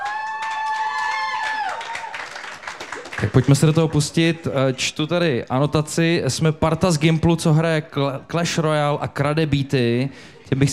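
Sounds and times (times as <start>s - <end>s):
audience applauding: 0.0s - 5.0s
speech: 3.2s - 10.7s.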